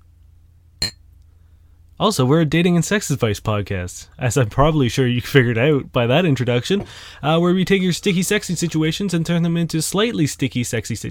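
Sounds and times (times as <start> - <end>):
quiet hum: 0.0 - 11.0
glasses clinking in a toast: 0.8 - 1.0
speech: 2.0 - 11.0.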